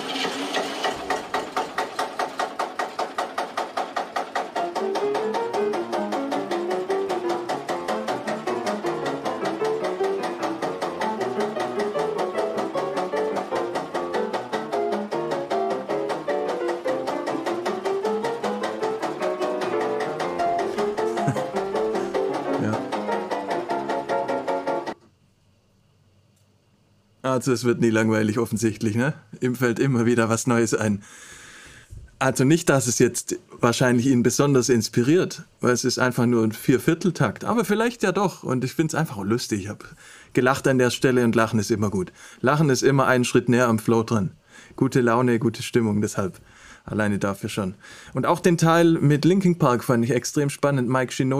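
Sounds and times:
tractor engine chugging as a rhythmic beat: 0.0 - 25.0
speech: 27.4 - 31.3, 32.2 - 51.3.

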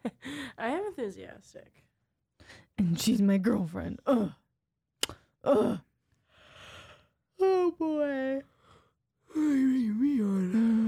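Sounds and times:
speech: 0.6 - 4.4, 5.1 - 5.9, 7.7 - 8.5, 9.3 - 10.8
person yawning: 5.4 - 5.9, 9.3 - 10.8.

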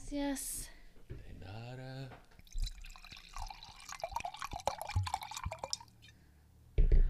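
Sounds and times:
speech: 0.1 - 2.3
wine pouring from a twist-off bottle into a glass: 2.4 - 6.1.

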